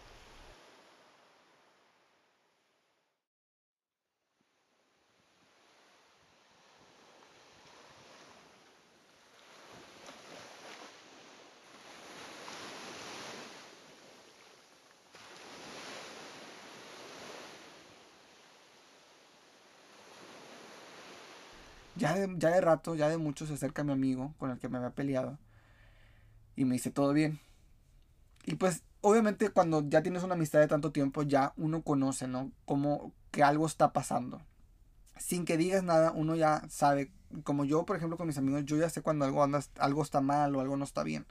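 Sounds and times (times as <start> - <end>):
ocean waves crashing onto a sandy seashore: 0.0 - 2.6, 4.4 - 23.6
speech: 22.0 - 25.4, 26.6 - 27.5, 28.4 - 34.5, 35.2 - 41.2.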